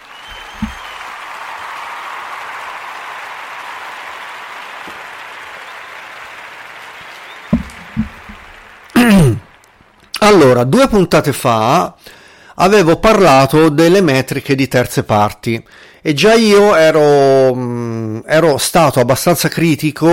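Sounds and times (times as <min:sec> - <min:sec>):
steady crowd applause: 0:00.0 - 0:10.0
knocks: 0:00.6 - 0:00.8, 0:07.5 - 0:08.6
speech: 0:10.4 - 0:20.1.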